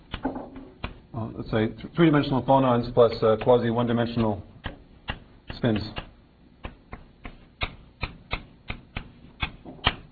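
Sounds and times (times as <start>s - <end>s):
writing taps and clicks during a physics lecture: 0.1s - 1.0s, 4.6s - 10.1s
speech: 1.3s - 4.5s, 5.6s - 6.0s.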